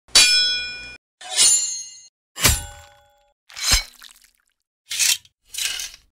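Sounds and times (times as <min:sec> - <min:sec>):
katana sword: 0:01.2 - 0:04.2, 0:04.9 - 0:06.1.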